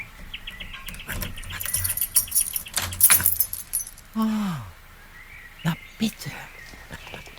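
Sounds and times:
keys jangling while unlocking front door: 0.9 - 4.1
speech: 4.2 - 4.7, 6.0 - 6.5.

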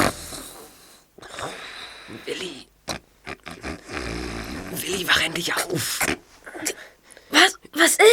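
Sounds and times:
sleeping person snoring: 0.0 - 2.5, 3.4 - 6.1
speech: 2.1 - 2.7, 4.8 - 6.8, 7.9 - 8.1.

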